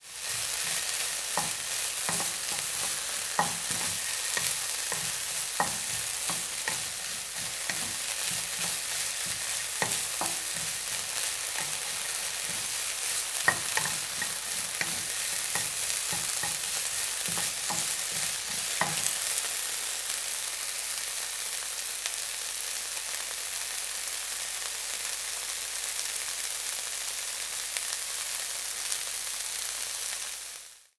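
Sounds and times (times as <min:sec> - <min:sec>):
cooking in a frying pan: 0:00.0 - 0:30.9.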